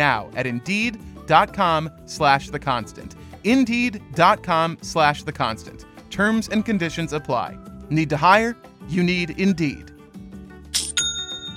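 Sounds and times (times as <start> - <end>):
speech: 0.0 - 9.9
online store sale notification chime: 10.8 - 11.5.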